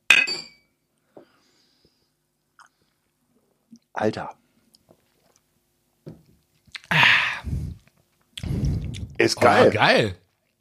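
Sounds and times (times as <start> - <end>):
glasses clinking in a toast over a stirred summer drink: 0.1 - 0.7
speech: 4.0 - 4.4, 9.3 - 10.2.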